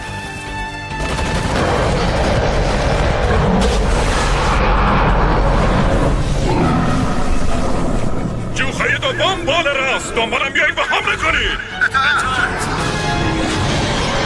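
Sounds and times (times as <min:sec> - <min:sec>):
heavy gunfire barrage with rapid overlapping shots: 0:00.9 - 0:06.3
deep rumbling: 0:01.3 - 0:14.2
speech: 0:09.6 - 0:11.8.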